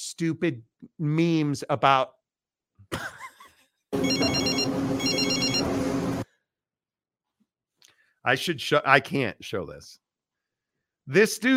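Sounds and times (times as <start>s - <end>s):
speech: 0.1s - 2.2s, 4.0s - 5.8s, 8.2s - 10.0s, 11.1s - 11.5s
steady noisy background: 4.0s - 6.2s
telephone ringing: 4.0s - 6.2s
warbling lead-in tone: 4.0s - 6.2s.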